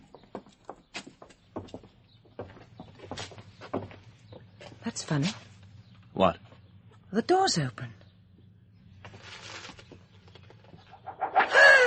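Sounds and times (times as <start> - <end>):
low rumbling noise: 1.4 - 11.8
speech: 4.9 - 5.5, 6.2 - 6.4, 7.1 - 8.0
owl hooting: 10.9 - 11.8.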